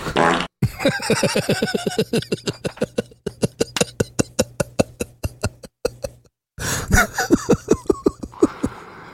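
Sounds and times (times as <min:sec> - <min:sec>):
fart sound effect from a soundboard button: 0:00.0 - 0:00.5
laughter: 0:00.6 - 0:06.2, 0:06.9 - 0:08.8.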